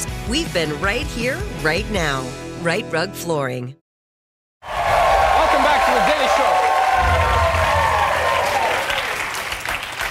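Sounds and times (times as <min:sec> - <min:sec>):
speech: 0:00.3 - 0:03.8
sustained applause from a large indoor audience: 0:04.6 - 0:10.0.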